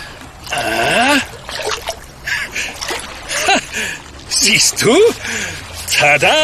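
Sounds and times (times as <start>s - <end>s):
water splashing and sloshing as a wallet is fished out by hand: 0.0s - 6.4s
speech: 4.4s - 6.4s.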